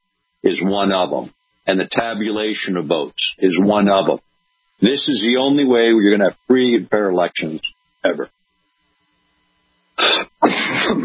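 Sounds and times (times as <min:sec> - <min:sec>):
speech: 0:00.4 - 0:08.4
person clearing throat: 0:10.0 - 0:11.0
person coughing: 0:10.0 - 0:11.0.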